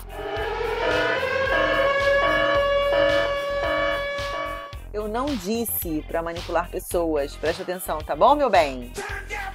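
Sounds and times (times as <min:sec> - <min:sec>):
electronic siren sound effect: 0:00.0 - 0:04.8
speech: 0:05.2 - 0:09.3.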